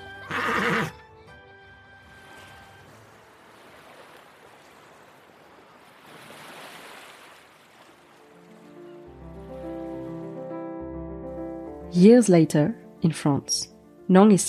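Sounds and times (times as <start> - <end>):
gentle music: 0.0 - 4.7, 7.9 - 14.4
horse whinnying on a beach by the sea: 0.2 - 1.0
speech: 0.5 - 1.0, 12.0 - 14.4
surf washing on a beach: 2.0 - 10.6.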